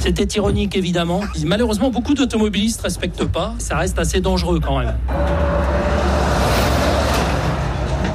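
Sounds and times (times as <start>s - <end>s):
speech: 0.0s - 5.9s
broadband road noise: 0.0s - 8.1s
heavy truck rumbling past on the road: 5.0s - 8.1s.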